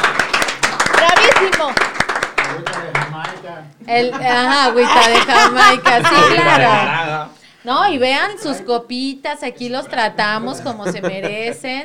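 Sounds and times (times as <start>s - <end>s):
small group clapping: 0.0s - 3.7s
speech: 3.6s - 11.8s
laughter: 4.0s - 7.2s, 10.5s - 11.8s.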